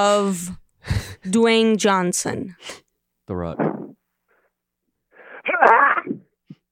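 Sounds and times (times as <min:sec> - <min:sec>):
speech: 0:00.0 - 0:03.7
theatrical sneeze performed by a caller: 0:05.2 - 0:06.3.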